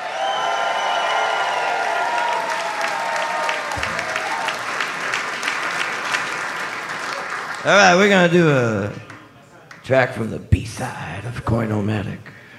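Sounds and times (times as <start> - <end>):
large live audience applauding and cheering a musical act: 0.0 - 9.2
speech: 7.6 - 9.1, 9.9 - 12.4.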